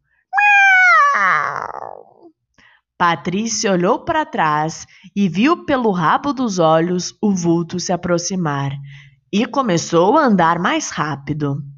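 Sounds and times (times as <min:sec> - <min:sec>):
cat screeching after its tail is stepped on: 0:00.4 - 0:02.3
speech: 0:03.0 - 0:11.7.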